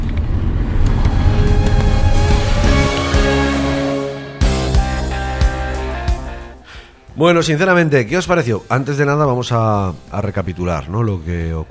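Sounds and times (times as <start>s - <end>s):
used Golf car engine revving hard while driving on a road: 0.0s - 6.4s
speech: 7.2s - 11.6s.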